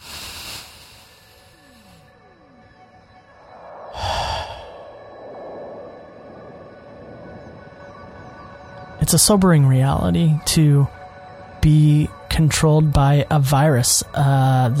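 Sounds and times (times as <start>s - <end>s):
deep breath during a guided breathing exercise: 0.0s - 2.3s, 3.5s - 5.9s
speech: 9.1s - 11.0s, 11.6s - 14.7s.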